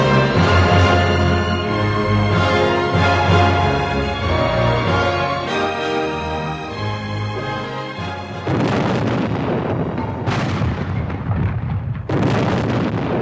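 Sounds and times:
soft music: 0:00.0 - 0:08.9
celebratory cannon fire from Union soldiers celebrating victory: 0:08.4 - 0:13.2.

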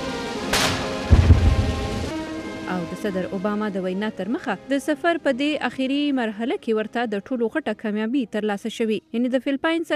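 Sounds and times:
cannon salute fired at a welcome ceremony at the presidential palace in Manila: 0:00.5 - 0:02.2
speech: 0:03.0 - 0:09.9.

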